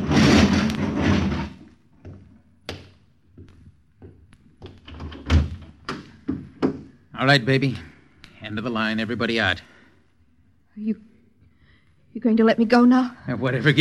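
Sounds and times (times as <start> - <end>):
garage door being hauled shut by a man: 0.0 - 1.6
speech: 7.2 - 7.9, 8.5 - 9.7, 10.8 - 11.1, 12.2 - 13.7.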